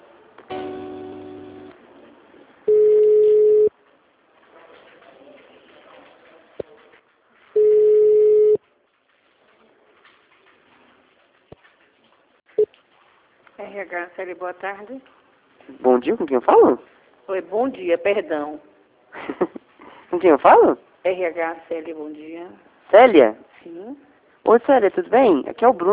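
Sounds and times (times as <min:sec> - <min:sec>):
telephone line beeps while a call is transferred: 0:02.7 - 0:03.7, 0:07.6 - 0:08.6
telephone line hiss: 0:07.6 - 0:08.6
speech: 0:13.8 - 0:15.2, 0:15.8 - 0:19.4, 0:20.1 - 0:25.9.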